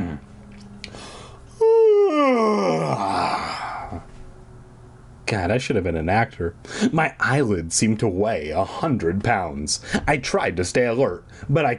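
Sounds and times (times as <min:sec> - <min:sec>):
loud drawn-out voiced yawn: 0:00.9 - 0:04.1
speech: 0:05.3 - 0:11.7.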